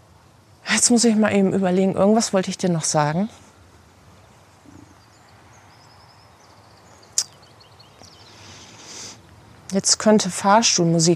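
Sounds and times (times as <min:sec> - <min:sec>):
faint birds chirping outdoors: 0:00.0 - 0:10.2
low hiss: 0:00.0 - 0:11.1
speech: 0:00.8 - 0:03.4, 0:09.7 - 0:11.1.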